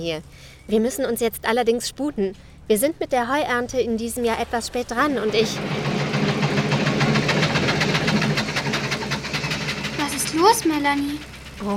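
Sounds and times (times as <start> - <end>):
speech: 0.0 - 5.9, 10.4 - 11.7
old often-repaired farm tractor engine chugging and sputtering during hay harvest: 2.5 - 11.7.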